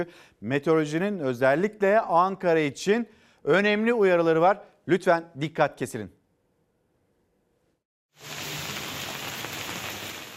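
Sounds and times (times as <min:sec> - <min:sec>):
speech: 0:00.0 - 0:06.2, 0:08.2 - 0:08.4
steady morning rain falling in Istanbul Turkey: 0:08.2 - 0:10.3.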